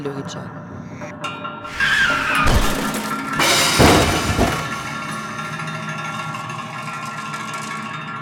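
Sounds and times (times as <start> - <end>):
speech: 0.0 - 1.4
car tyres skidding: 1.7 - 7.8
car crash debris settling: 1.7 - 7.9
glass shattering: 1.7 - 7.9
harsh metallic car crash: 1.7 - 8.1.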